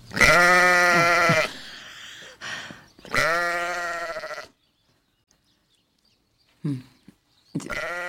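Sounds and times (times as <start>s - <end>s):
sheep bleating: 0.1s - 1.6s, 3.1s - 4.6s, 7.7s - 8.0s.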